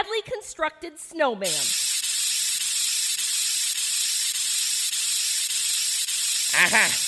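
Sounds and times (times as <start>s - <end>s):
speech: 0.0s - 1.8s, 6.5s - 7.0s
aerosol can spraying white paint onto a tree: 1.4s - 7.0s.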